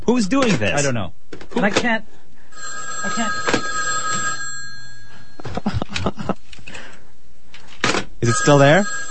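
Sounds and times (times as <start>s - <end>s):
speech: 0.1s - 3.6s, 5.6s - 6.4s, 8.2s - 9.0s
fax machine tones on main phone line: 2.5s - 5.6s, 8.2s - 9.1s
laughter: 5.4s - 6.5s.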